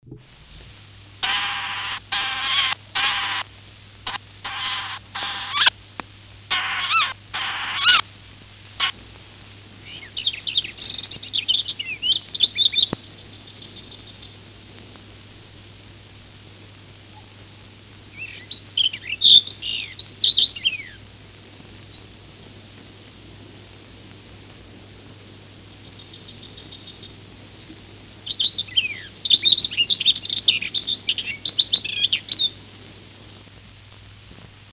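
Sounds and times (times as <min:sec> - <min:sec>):
barred warbler: 0:01.2 - 0:03.5, 0:04.1 - 0:05.7, 0:06.5 - 0:08.1, 0:09.8 - 0:15.3, 0:18.1 - 0:22.1, 0:25.5 - 0:33.4.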